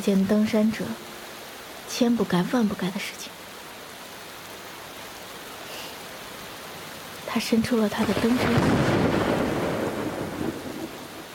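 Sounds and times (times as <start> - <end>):
speech: 0.0 - 1.1, 1.9 - 3.4, 7.4 - 8.9
steady heavy rain: 0.0 - 11.3
thunder rumbling from a lightning strike on a mountain: 7.9 - 11.3.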